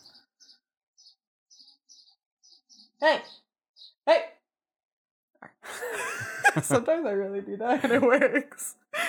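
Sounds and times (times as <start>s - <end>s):
birds chirping while fighting: 0.0s - 4.1s
speech: 3.0s - 3.4s, 6.6s - 8.8s
laughter: 5.7s - 7.0s, 7.7s - 8.4s.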